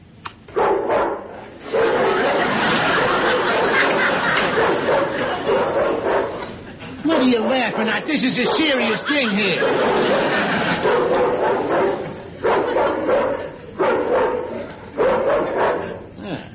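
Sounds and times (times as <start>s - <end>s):
home burglar alarm system playing recorded dog barking: 0.6s - 6.4s, 7.4s - 15.9s
laughter: 1.6s - 16.1s
speech: 7.3s - 10.8s.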